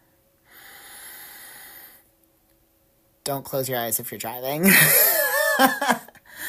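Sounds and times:
deep breath during a guided relaxation exercise: 0.4 - 2.1, 6.2 - 6.4
speech: 3.3 - 6.1.

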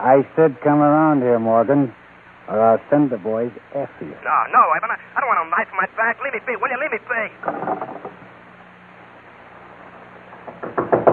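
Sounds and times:
speech: 0.0 - 8.1
heavy pounding on a door: 10.5 - 11.1.

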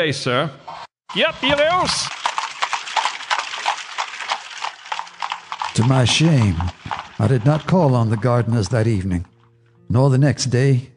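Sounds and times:
speech: 0.0 - 2.3, 5.8 - 9.3, 9.9 - 10.9
hooves of a horse being ridden clip-clopping: 1.1 - 9.5.

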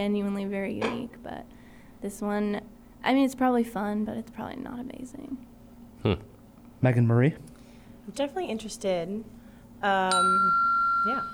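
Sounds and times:
speech: 0.0 - 7.5, 8.1 - 11.3
metallic bell being rung: 10.1 - 11.3.

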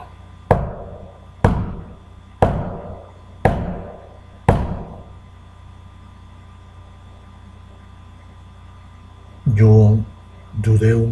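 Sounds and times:
heavy knocking blows: 0.0 - 5.1
speech: 9.6 - 11.1.

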